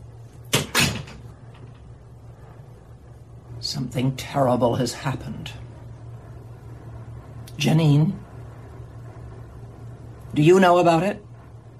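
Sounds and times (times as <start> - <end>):
quiet room hum: 0.0 - 11.7
door swinging shut with wooden knocks and latching clack: 0.5 - 1.8
speech: 3.7 - 5.6, 7.6 - 8.2, 10.4 - 11.3.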